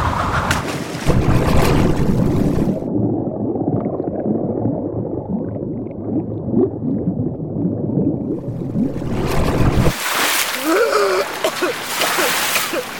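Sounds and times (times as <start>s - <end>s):
cold mountain rapids rushing: 0.7s - 2.8s, 8.3s - 12.9s
underwater roar of churning bubbles as a body goes under: 1.0s - 10.0s.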